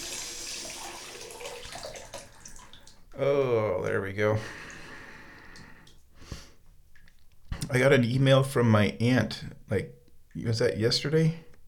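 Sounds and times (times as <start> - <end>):
running tap water pouring: 0.0 - 3.1
speech: 3.2 - 4.7, 7.7 - 11.5.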